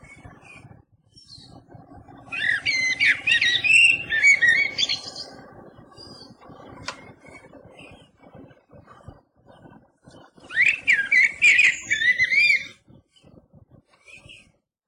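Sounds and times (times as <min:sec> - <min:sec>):
Eurasian blackbird singing fluted warbling phrases: 0:02.3 - 0:05.3, 0:10.5 - 0:12.7.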